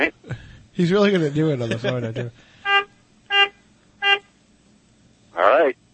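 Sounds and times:
speech: 0.8 - 2.5
short bright car horn honks: 2.6 - 4.3.

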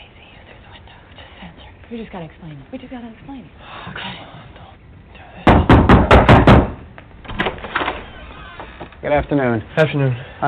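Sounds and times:
speech: 1.9 - 4.5, 9.0 - 10.4
loud hard knocks on a house door by sheriff's deputies: 5.4 - 7.5
door rattling: 5.9 - 9.0.

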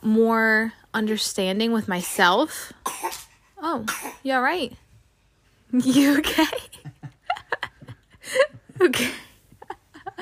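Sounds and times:
speech: 0.0 - 4.8, 5.7 - 6.7, 8.3 - 9.2
baby coughing or sneezing: 2.8 - 4.2.

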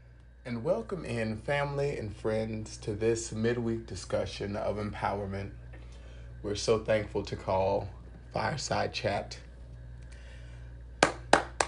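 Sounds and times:
faint low hum: 0.0 - 11.6
speech: 0.4 - 5.6, 6.4 - 9.4
hand claps: 11.0 - 11.6.

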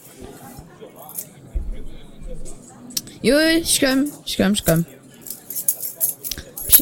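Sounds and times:
murmur of voices: 0.0 - 6.8
speech: 3.2 - 5.0
keys jangling as a key is fetched: 4.7 - 6.8.

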